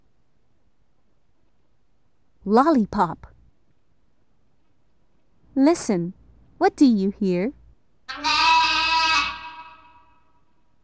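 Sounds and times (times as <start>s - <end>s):
speech: 2.4s - 3.3s, 5.6s - 8.4s
lamb bleating: 8.1s - 10.3s.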